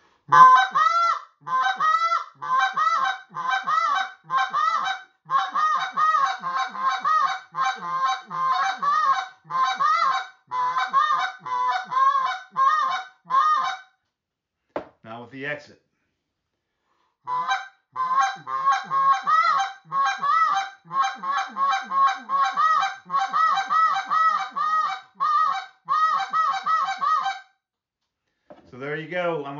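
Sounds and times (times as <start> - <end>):
speech: 0.3 - 0.7
goose call blown with clucks and moans imitating a goose: 0.3 - 13.8, 17.3 - 27.4.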